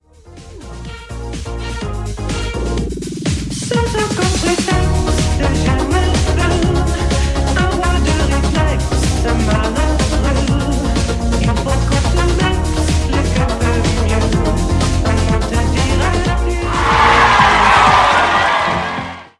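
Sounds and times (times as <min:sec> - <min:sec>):
party music: 0:00.2 - 0:19.3
applause: 0:16.8 - 0:19.3.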